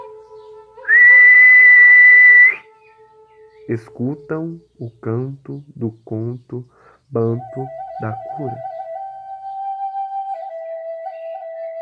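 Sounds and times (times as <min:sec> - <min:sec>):
person whistling one loud steady sustained note: 0:00.9 - 0:02.7, 0:07.4 - 0:10.8
speech: 0:03.7 - 0:08.7.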